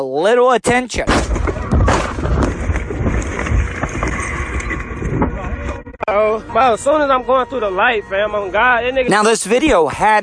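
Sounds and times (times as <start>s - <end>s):
speech: 0.0s - 1.4s, 6.1s - 10.2s
thud: 0.7s - 4.2s
car crash impact from car being T-boned at a green light: 1.1s - 4.2s
rough rumbling noise: 1.2s - 9.1s
voices: 5.0s - 10.2s.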